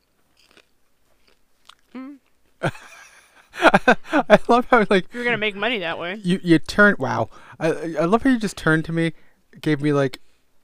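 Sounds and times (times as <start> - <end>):
popcorn being chewed crunching: 0.0 - 2.6
speech: 2.6 - 2.8, 3.8 - 10.2
laughter: 2.6 - 5.6.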